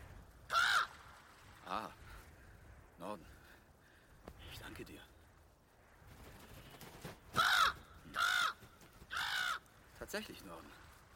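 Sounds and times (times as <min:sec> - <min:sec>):
raven giving a hoarse rasping caw: 0:00.4 - 0:02.9, 0:05.5 - 0:10.0
speech: 0:01.7 - 0:02.0, 0:03.0 - 0:03.4, 0:04.6 - 0:05.1, 0:10.0 - 0:10.8.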